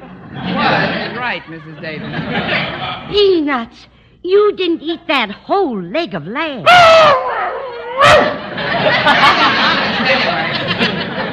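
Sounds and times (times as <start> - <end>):
laughter: 0.0 - 3.1, 7.8 - 11.3
speech: 1.2 - 7.2
dog whining: 6.7 - 8.4.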